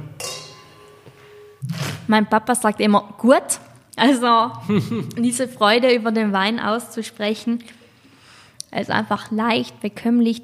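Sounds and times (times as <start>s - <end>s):
wine glasses clinking in a toast: 0.0s - 1.6s
speech: 2.1s - 7.8s, 8.7s - 10.4s
laughter: 4.6s - 5.2s.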